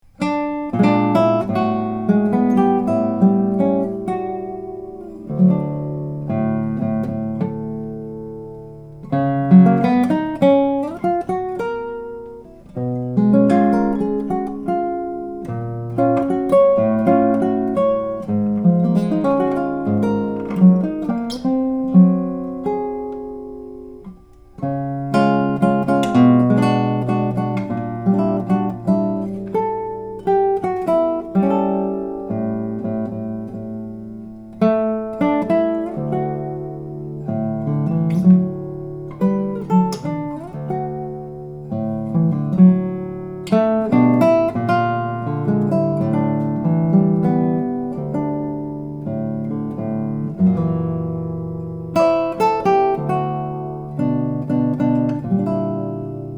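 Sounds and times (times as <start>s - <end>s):
unibody classical guitar: 0.0s - 56.3s.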